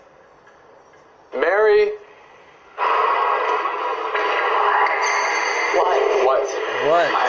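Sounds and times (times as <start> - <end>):
speech: 1.4 - 2.0
radio hiss from a ghost box device: 1.4 - 7.2
ghost box device scanning with static-laced choppy voice-like fragments: 2.8 - 7.2.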